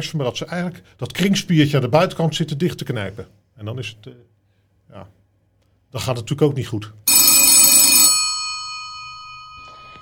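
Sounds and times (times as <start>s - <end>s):
speech: 0.0s - 4.3s, 4.9s - 5.2s, 5.9s - 7.1s
telephone ringing: 7.1s - 10.0s.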